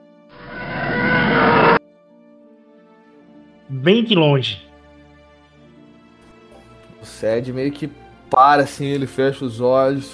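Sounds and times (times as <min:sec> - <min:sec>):
distant sci-fi starfighter engine roar: 0:00.3 - 0:01.8
speech: 0:03.7 - 0:04.6, 0:07.2 - 0:10.1.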